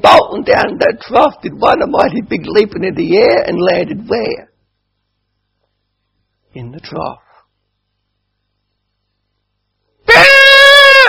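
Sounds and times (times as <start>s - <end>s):
speech: 0.0s - 4.5s, 6.6s - 7.2s
pig squealing: 10.1s - 11.0s.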